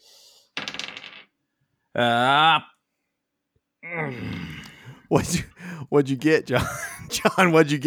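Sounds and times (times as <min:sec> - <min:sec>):
several dice clattering onto a table: 0:00.6 - 0:01.3
speech: 0:02.0 - 0:02.7, 0:03.9 - 0:04.5, 0:05.1 - 0:07.8
laughter: 0:06.5 - 0:07.8.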